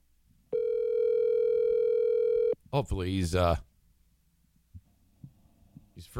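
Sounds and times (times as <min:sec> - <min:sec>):
steady electronic telephone line tone while a call connects: 0:00.5 - 0:02.6
speech: 0:02.7 - 0:03.7, 0:06.0 - 0:06.1.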